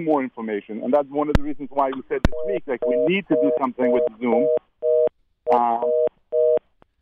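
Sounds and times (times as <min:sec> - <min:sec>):
speech: 0:00.0 - 0:04.6, 0:05.5 - 0:06.1
telephone line noise crackle: 0:01.3 - 0:04.4
telephone line busy tone after a dropped call: 0:02.4 - 0:05.1, 0:05.8 - 0:06.6.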